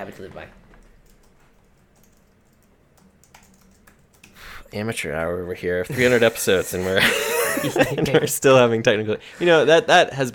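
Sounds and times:
speech: 0.0 - 0.6, 4.7 - 10.3
typing on a computer keyboard: 0.8 - 4.4
laughter: 5.9 - 8.5.

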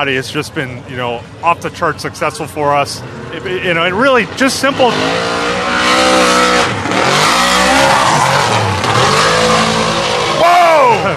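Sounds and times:
speech: 0.0 - 5.4
car engine roaring at a drag-racing event: 0.0 - 11.1
car widebody tires squealing and sliding for traction under throttle at a drag-racing event: 4.5 - 11.1.

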